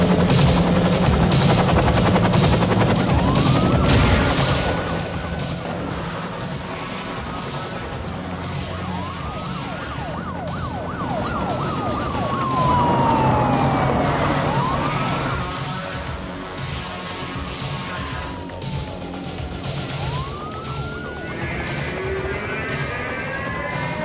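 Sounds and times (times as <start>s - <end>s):
helicopter rotor and engine roar flying over a police chase: 0.0s - 24.0s
police sirens wailing: 0.0s - 24.0s.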